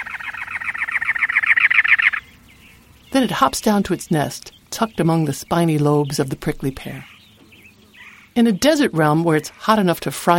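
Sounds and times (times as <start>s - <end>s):
Cactus Wren singing perched atop a cactus in the Arizona desert: 0.0s - 10.3s
speech: 3.2s - 7.1s, 8.4s - 10.3s.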